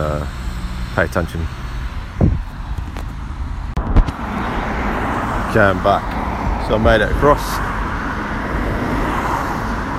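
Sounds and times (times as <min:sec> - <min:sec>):
cars passing: 0:00.0 - 0:09.9
road traffic rumbling: 0:00.0 - 0:09.9
speech: 0:01.0 - 0:01.6, 0:05.5 - 0:07.7.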